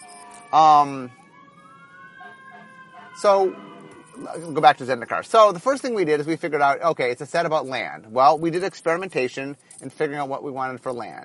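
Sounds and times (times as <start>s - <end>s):
fire truck siren wailing: 0.0s - 9.8s
speech: 0.5s - 1.2s, 3.2s - 11.2s
fire truck horn blasts: 2.2s - 4.3s.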